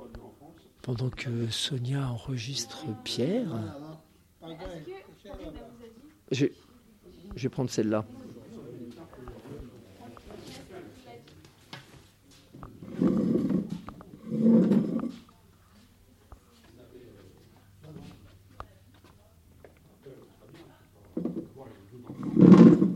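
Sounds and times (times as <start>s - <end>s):
quiet murmured talk: 0.0s - 11.6s, 12.2s - 22.9s
speech: 0.8s - 3.8s, 6.3s - 6.7s, 7.4s - 8.2s
chair carried and set down with scraping thumps: 12.8s - 15.3s, 22.1s - 22.9s.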